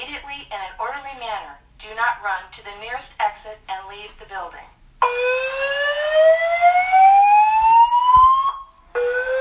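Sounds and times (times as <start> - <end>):
speech: 0.4 - 6.6
building emergency alarm tone sweeping upward: 5.0 - 9.4.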